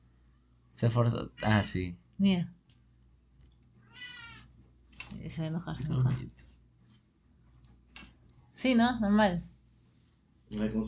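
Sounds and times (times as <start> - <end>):
low hum: 0.0 - 10.8
speech: 0.8 - 2.6, 5.2 - 6.5, 8.6 - 9.5, 10.5 - 10.8
cat meowing: 3.8 - 4.5.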